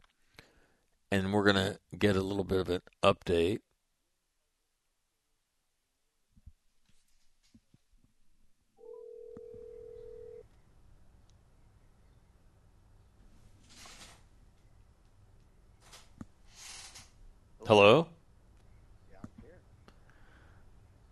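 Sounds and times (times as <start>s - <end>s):
speech: 1.1s - 3.7s, 17.7s - 18.2s
telephone tone as a phone call is placed: 8.8s - 10.4s.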